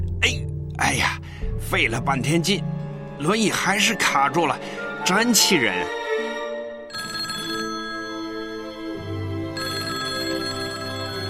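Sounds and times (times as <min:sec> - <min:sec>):
speech: 0:00.2 - 0:06.0
telephone melodic electronic ringtone: 0:06.9 - 0:11.2.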